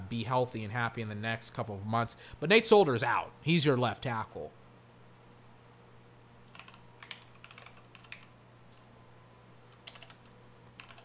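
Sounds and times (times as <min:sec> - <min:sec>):
low steady hum: 0:00.0 - 0:11.0
speech: 0:00.1 - 0:04.6
fingers typing on a computer keyboard: 0:06.4 - 0:08.8, 0:09.7 - 0:11.0.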